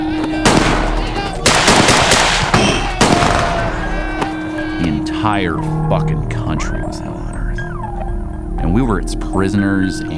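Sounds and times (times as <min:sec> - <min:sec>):
Schofield revolver firing round after round: 0:00.4 - 0:03.9
steady low hum: 0:03.6 - 0:09.3
speech: 0:05.2 - 0:07.4, 0:08.6 - 0:10.1.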